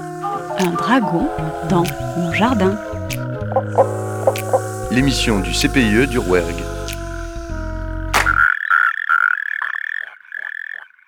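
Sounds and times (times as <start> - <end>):
European tree frog calling with rattling croaks: 0.2 - 11.0
speech: 0.6 - 6.7.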